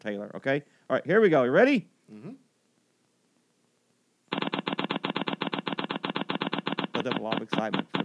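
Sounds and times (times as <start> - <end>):
speech: 0.0 - 2.4, 7.0 - 8.0
prize wheel spinning with its pointer clicking on pegs: 4.3 - 8.0.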